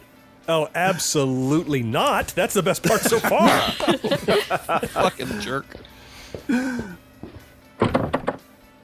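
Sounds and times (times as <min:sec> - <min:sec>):
speech: 0:00.5 - 0:07.0
laughter: 0:02.7 - 0:05.8
door creaking shut with a dull thud: 0:07.8 - 0:08.5
door latch rattling and clanking as it is locked: 0:07.8 - 0:08.5.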